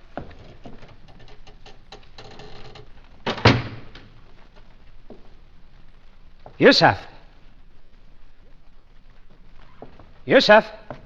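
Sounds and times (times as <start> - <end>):
small rattling sounds: 0.0 - 4.2
light patter: 0.0 - 11.0
door shut on a prisoner with a heavy thud: 3.2 - 4.2
speech: 6.6 - 7.1, 10.3 - 10.8.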